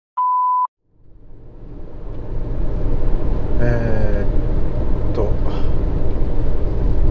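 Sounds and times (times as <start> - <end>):
short electronic beep: 0.2 - 0.7
faint tonal whine: 0.8 - 7.0
low rumble of a car interior while driving: 0.9 - 7.0.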